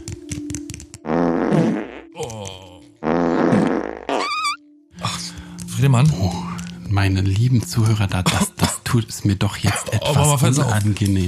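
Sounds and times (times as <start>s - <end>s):
long loud buzzing farts with squeaky high-pitched rise: 1.0s - 2.1s, 3.0s - 4.6s
speech: 5.9s - 11.2s.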